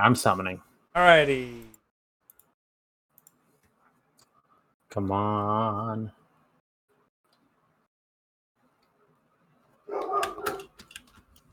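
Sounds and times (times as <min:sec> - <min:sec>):
speech: 0:00.0 - 0:01.7, 0:04.9 - 0:06.2
dog barking: 0:09.9 - 0:10.7.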